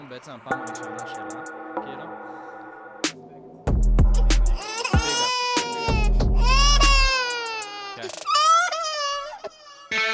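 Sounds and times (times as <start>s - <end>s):
speech: 0.1s - 2.5s
baby crying: 4.0s - 10.0s.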